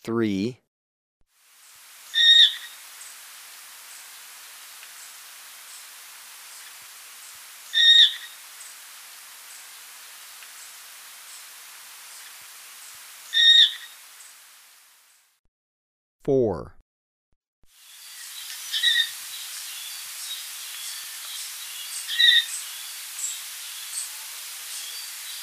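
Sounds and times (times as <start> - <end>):
speech: 0.0 - 0.6, 16.2 - 16.8
faint hiss: 1.3 - 15.4, 17.7 - 25.4
Blue-fronted parrotlet calls in Ecuador: 2.1 - 2.8, 7.7 - 8.3, 13.3 - 13.9, 18.2 - 19.2, 22.0 - 22.7.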